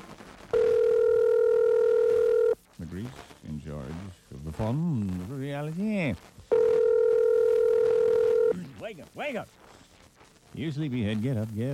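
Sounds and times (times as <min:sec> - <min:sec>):
low noise: 0:00.0 - 0:11.7
telephone dial tone: 0:00.6 - 0:02.6, 0:06.5 - 0:08.5
speech: 0:04.6 - 0:06.4, 0:08.8 - 0:09.6, 0:10.5 - 0:11.7.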